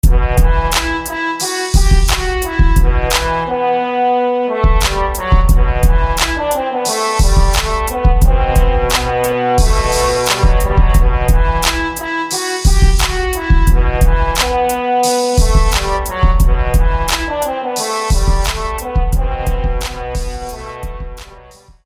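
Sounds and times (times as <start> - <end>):
high trombone: 0.0 - 21.8.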